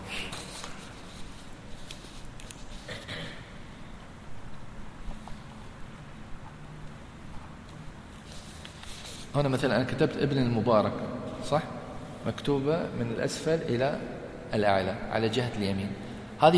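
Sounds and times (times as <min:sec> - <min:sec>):
paper sheets rustling and shuffling: 0:00.2 - 0:03.0, 0:08.1 - 0:09.4
speech: 0:09.4 - 0:16.5.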